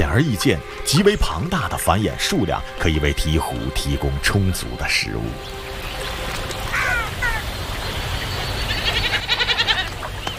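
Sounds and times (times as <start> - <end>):
outdoor hiss: 0.0 - 10.3
speech: 0.2 - 5.7
wild goats bleating at a river: 8.8 - 9.9.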